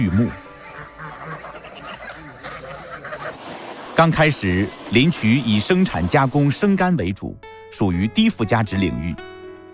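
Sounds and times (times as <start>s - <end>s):
speech: 0.0s - 0.4s, 4.0s - 9.4s
flock of Landes geese honking and cackling in a forest district: 0.0s - 6.3s.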